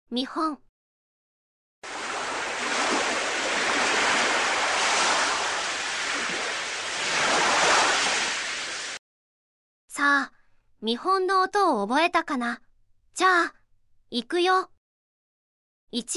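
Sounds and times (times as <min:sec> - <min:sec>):
speech: 0:00.1 - 0:00.6, 0:10.0 - 0:12.6, 0:13.2 - 0:14.7, 0:15.9 - 0:16.1
flowing water: 0:01.8 - 0:09.0.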